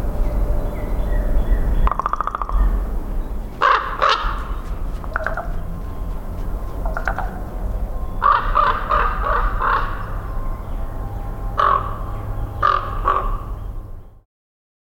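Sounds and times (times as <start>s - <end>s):
low rumble: 0.0s - 12.7s
Common Raven calls: 1.2s - 13.8s.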